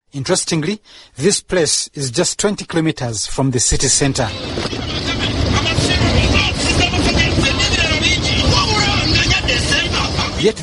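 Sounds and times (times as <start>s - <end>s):
speech: 0.1s - 6.3s, 10.4s - 10.6s
road traffic and trucks at a roadside south of Kampala Uganda: 4.3s - 10.6s.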